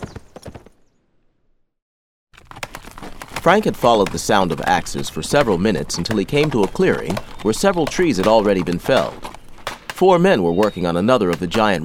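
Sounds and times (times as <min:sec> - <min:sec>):
horse hooves clip-clopping as a horse is ridden off: 0:02.4 - 0:11.8
speech: 0:03.4 - 0:09.3, 0:10.0 - 0:11.8.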